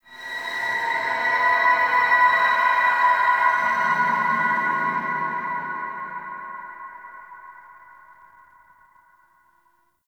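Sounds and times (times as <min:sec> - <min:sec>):
ambient texture: 0:00.2 - 0:08.1.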